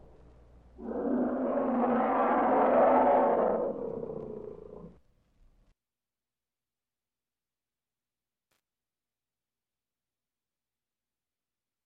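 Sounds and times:
bear roaring: 0.8s - 5.0s.

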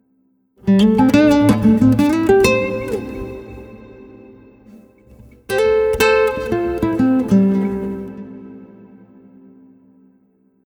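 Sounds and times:
acoustic guitar solo: 0.6s - 9.0s.

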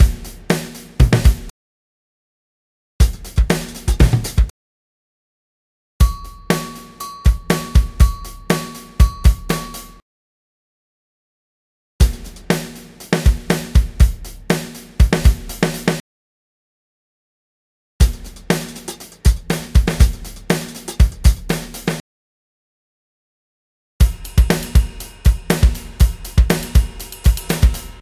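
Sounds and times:
arena rock drums and fills at 120 BPM: 0.0s - 1.5s, 3.0s - 4.5s, 6.0s - 10.0s, 12.0s - 16.0s, 18.0s - 22.0s, 24.0s - 28.0s.

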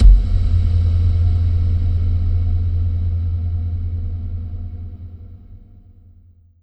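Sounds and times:
techno trance hit: 0.0s - 4.9s.

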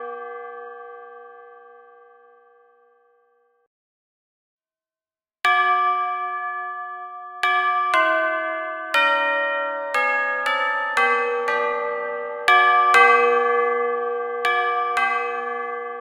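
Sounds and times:
bells: 0.0s - 3.4s, 5.5s - 15.9s.

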